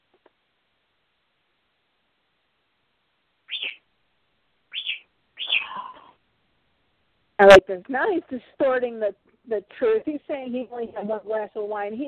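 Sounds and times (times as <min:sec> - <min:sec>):
pet bird chirping: 0:03.5 - 0:03.9, 0:04.7 - 0:06.1
speech: 0:07.4 - 0:12.0.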